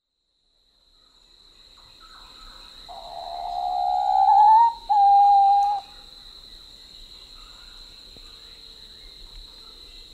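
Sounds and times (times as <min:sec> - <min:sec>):
Papuan pitta whistling call in Papua New Guinea: 0:02.9 - 0:05.9.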